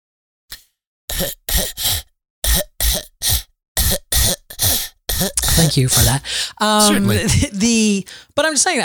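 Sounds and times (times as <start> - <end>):
person coughing hard and throaty: 1.1 - 7.5
speech: 1.2 - 2.0, 5.2 - 8.8.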